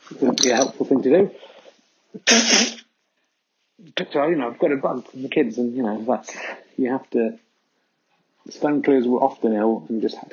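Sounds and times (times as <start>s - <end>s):
speech: 0.1s - 1.5s, 2.1s - 2.8s, 3.8s - 7.4s, 8.4s - 10.3s
person with a cold sneezing: 2.2s - 2.8s.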